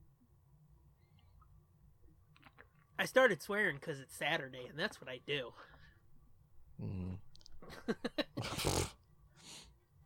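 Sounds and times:
speech: 3.0s - 5.7s, 6.8s - 9.0s
low throaty grunt: 6.8s - 7.2s.

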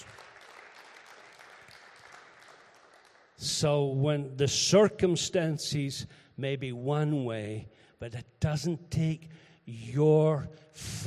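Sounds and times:
audience applause: 0.0s - 3.4s
speech: 3.4s - 11.0s.

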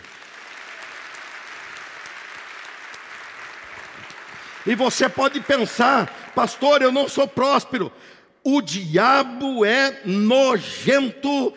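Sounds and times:
audience applauding: 0.0s - 7.3s
speech: 4.6s - 11.5s.

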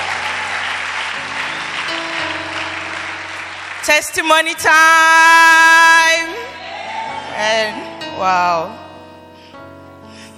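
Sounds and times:
church congregation applause: 0.0s - 5.6s, 6.2s - 8.0s
speech: 3.9s - 5.6s, 7.4s - 8.8s.

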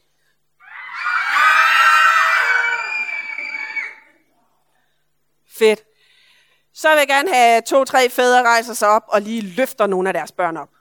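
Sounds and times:
crowd of voices many sounding like children screaming: 0.6s - 4.2s
speech: 5.6s - 5.9s, 6.8s - 10.7s.

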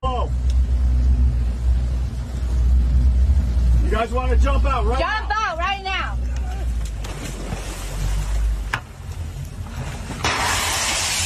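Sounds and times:
low rumble of a burning boat on the water: 0.0s - 11.2s
roaring wind-like noise of a burning boat: 0.0s - 11.2s
speech: 4.0s - 5.4s
loud rushing hiss: 10.2s - 11.2s
sharp crack: 10.2s - 11.2s.

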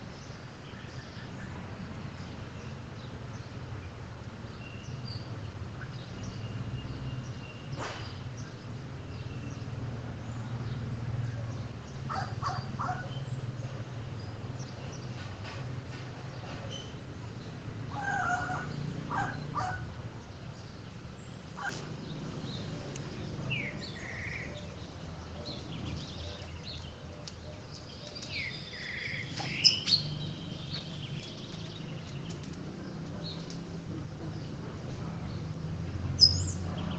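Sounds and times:
steady low rumble of outdoor noise: 0.0s - 36.9s
birds calling in a backyard: 0.2s - 36.9s.

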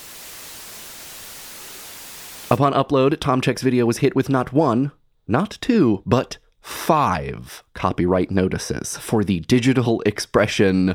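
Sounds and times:
steady low-level white noise: 0.0s - 2.6s
speech: 2.5s - 10.9s.

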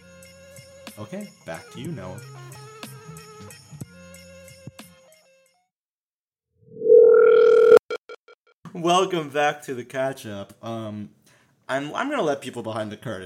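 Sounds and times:
speech: 1.0s - 2.6s, 8.8s - 13.2s
soft electronic tones of a telephone ring back tone: 6.7s - 8.2s.

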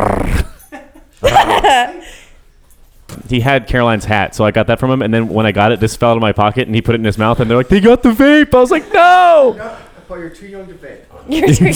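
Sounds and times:
dog whining: 0.0s - 0.6s
laughter-like vocal sounds: 0.0s - 2.2s, 11.4s - 11.7s
speech: 1.6s - 2.2s, 3.3s - 11.7s.

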